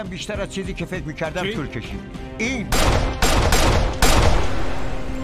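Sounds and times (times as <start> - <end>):
speech: 0.0 - 3.8
gunshots of blank rounds from an intelligence service weapon: 2.7 - 5.1.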